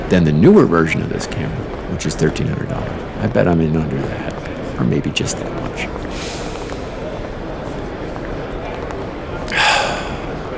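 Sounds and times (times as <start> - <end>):
speech: 0.1 - 6.4
person gasping for breath after talking at length: 6.1 - 7.1, 9.5 - 10.4.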